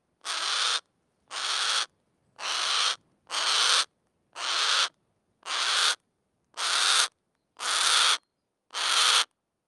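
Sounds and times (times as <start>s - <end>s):
Harris's hawk screechy squawks: 0.2s - 6.0s, 6.6s - 9.3s.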